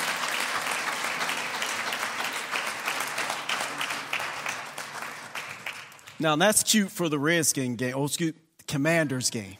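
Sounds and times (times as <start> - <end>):
audience applauding in praise: 0.0 - 6.4
speech: 6.2 - 9.5.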